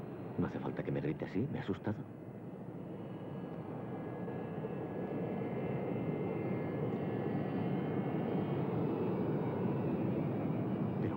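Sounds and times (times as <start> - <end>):
speech: 0.4 - 2.3
airplane taking off from a runway: 3.0 - 11.1.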